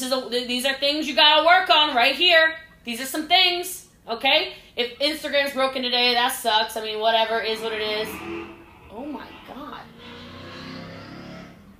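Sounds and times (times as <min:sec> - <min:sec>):
speech: 0:00.1 - 0:09.3
car engine rumbling: 0:06.8 - 0:11.7.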